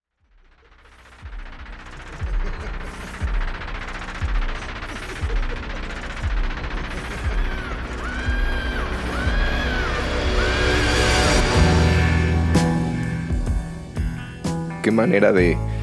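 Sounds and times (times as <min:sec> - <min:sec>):
dense busy music: 0:00.7 - 0:15.8
laughter: 0:01.8 - 0:11.4
wild high scream: 0:07.2 - 0:12.7
reversed piano chord: 0:08.0 - 0:14.8
speech: 0:15.0 - 0:15.8.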